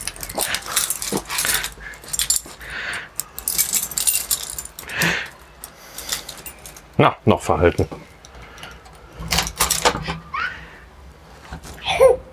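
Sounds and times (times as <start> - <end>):
keys jangling as door is unlocked: 0.0 - 7.0, 9.3 - 9.9
speech: 7.0 - 8.0
dog yelping and whining excitedly: 11.8 - 12.3.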